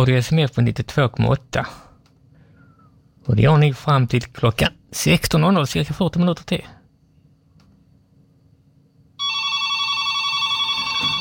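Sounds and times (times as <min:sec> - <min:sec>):
speech: 0:00.0 - 0:01.9, 0:03.2 - 0:06.8
telephone bell ringing during a radio broadcast: 0:09.2 - 0:11.1.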